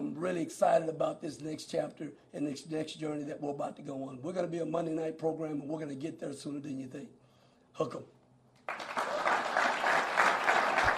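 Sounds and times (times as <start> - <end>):
speech: 0.2 - 7.2, 7.8 - 8.9
crowd giving a standing ovation at a basketball coach press conference: 8.6 - 10.9.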